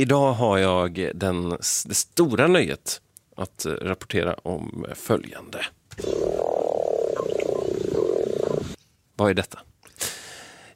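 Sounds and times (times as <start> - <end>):
speech: 0.0 - 7.3, 9.2 - 9.7
mating toad croaking in a pond in Funningen: 6.0 - 8.8.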